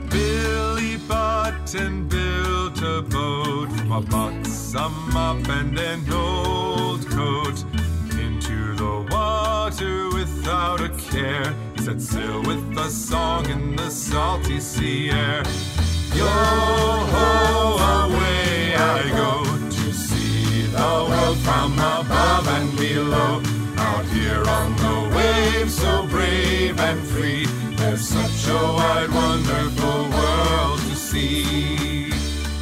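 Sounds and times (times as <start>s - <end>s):
man singing a song from a textbook: 0.1s - 32.5s.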